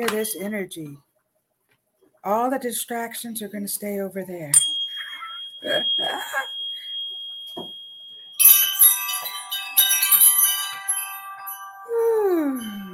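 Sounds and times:
speech: 0:00.0 - 0:01.1, 0:02.2 - 0:04.8, 0:05.6 - 0:06.6, 0:07.6 - 0:07.8
wind chimes ringing in a house: 0:04.6 - 0:12.9.

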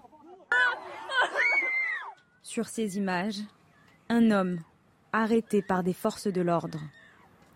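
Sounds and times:
laughter: 0:00.0 - 0:02.1
distressed residents shouting and screaming at police during lockdown clashes: 0:00.5 - 0:02.2
speech: 0:02.5 - 0:07.0.

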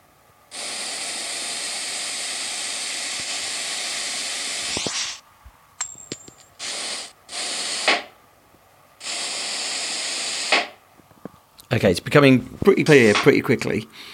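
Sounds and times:
air hiss of a balloon being pumped up in a game: 0:00.5 - 0:05.2, 0:06.6 - 0:08.2, 0:09.0 - 0:10.8
speech: 0:11.7 - 0:14.1.

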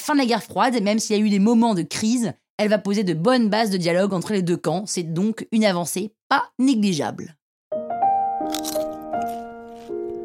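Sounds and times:
speech: 0:00.0 - 0:07.4
crisp crunching bursts: 0:08.4 - 0:10.2.

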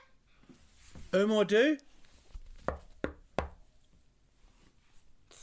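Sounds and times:
speech: 0:01.1 - 0:01.9
knocking on a door: 0:02.6 - 0:03.6.

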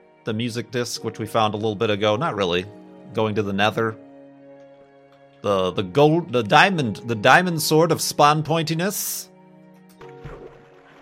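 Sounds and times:
speech: 0:00.2 - 0:04.0, 0:05.4 - 0:09.3
video game boat moving across water: 0:10.0 - 0:11.0.

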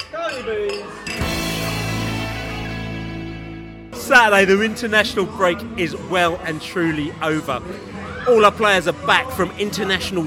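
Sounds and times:
glasses clinking in a busy pub: 0:00.0 - 0:01.2
speech: 0:00.3 - 0:00.8, 0:04.1 - 0:10.2
low murmur of voices in a pub: 0:04.0 - 0:10.2.

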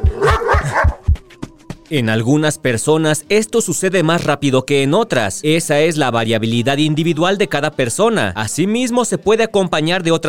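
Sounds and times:
dog barking: 0:00.0 - 0:01.0
speech: 0:01.9 - 0:10.2.

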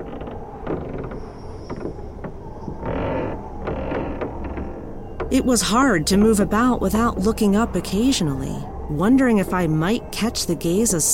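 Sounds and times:
footsteps creaking on wooden attic floor: 0:00.0 - 0:05.3
steady low rumbling background: 0:00.0 - 0:11.1
speech: 0:05.3 - 0:11.1.

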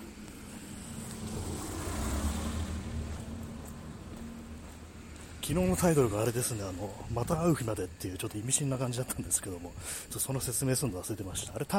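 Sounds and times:
steady broadband road noise: 0:00.0 - 0:11.7
vehicle engine passing: 0:00.1 - 0:07.0
speech: 0:05.5 - 0:11.7.

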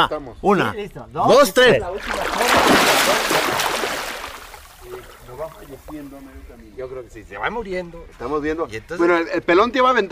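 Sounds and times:
speech: 0:00.0 - 0:03.8, 0:04.8 - 0:10.1
quiet water sounds: 0:01.8 - 0:08.6
swimmer churning through water underwater: 0:02.0 - 0:05.9.

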